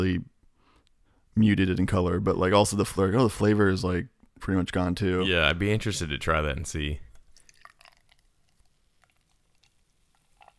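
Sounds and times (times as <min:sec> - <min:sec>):
speech: 0:01.4 - 0:07.1
drink poured into a glass: 0:07.1 - 0:10.5.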